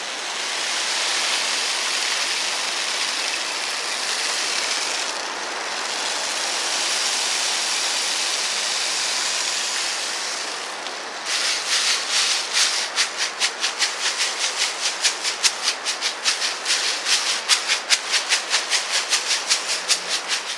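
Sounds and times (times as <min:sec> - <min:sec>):
hissing water-like wash: 0:00.0 - 0:20.5
rain stick grains cascading: 0:10.7 - 0:20.5.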